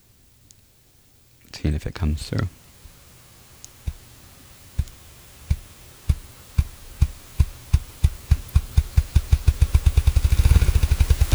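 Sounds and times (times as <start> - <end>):
speech: 1.5 - 2.6
bird drumming by beating wings faster: 2.3 - 11.3.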